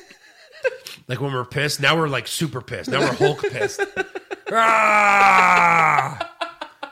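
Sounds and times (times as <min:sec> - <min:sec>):
speech: 0:01.1 - 0:06.2
laughter: 0:02.9 - 0:06.8
loud exaggerated cartoonish angry yell: 0:04.5 - 0:06.2.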